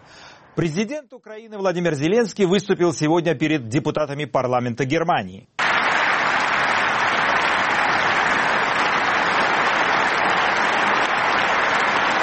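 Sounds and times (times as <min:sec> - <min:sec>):
speech: 0:00.6 - 0:05.6
sustained dense applause from members of parliament in the German Bundestag chamber: 0:05.6 - 0:12.2.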